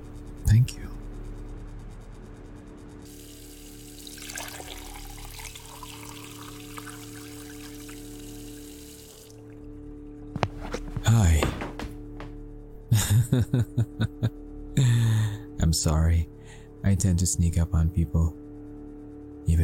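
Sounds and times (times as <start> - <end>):
low hum: 0.0 - 19.6
water pouring into a glass: 3.1 - 9.7
laughter: 12.9 - 15.1
speech: 13.4 - 14.0, 15.8 - 18.4.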